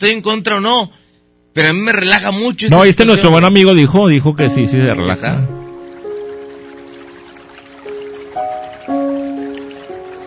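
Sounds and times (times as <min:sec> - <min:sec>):
speech: 0:00.0 - 0:01.0, 0:01.6 - 0:05.6
water dripping in resonant ringing drops: 0:04.4 - 0:10.2.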